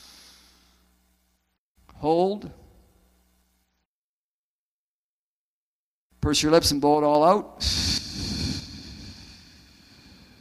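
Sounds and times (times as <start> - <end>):
deep breath in through the nose: 0.0 - 0.8, 7.6 - 10.3
speech: 2.0 - 2.6, 6.2 - 8.1.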